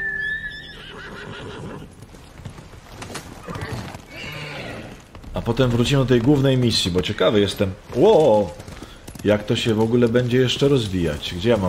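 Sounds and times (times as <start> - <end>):
horse whinnying: 0.0 - 2.0, 3.4 - 5.1
horse hooves clip-clopping: 1.1 - 11.6
speech: 1.2 - 2.0, 5.4 - 8.6, 9.2 - 11.6.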